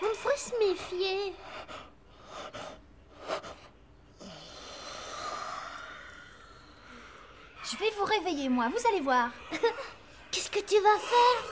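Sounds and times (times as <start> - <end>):
speech: 0.6 - 1.8, 8.0 - 11.5
long exhale and slow sleepy breathing: 1.4 - 7.7
several people yawning quietly and breathily: 4.2 - 7.5.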